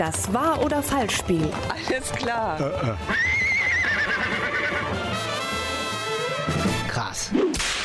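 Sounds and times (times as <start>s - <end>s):
speech: 0.0s - 3.5s, 6.5s - 7.7s
horse hooves clip-clopping: 0.0s - 6.0s
horse neighing: 2.5s - 5.1s.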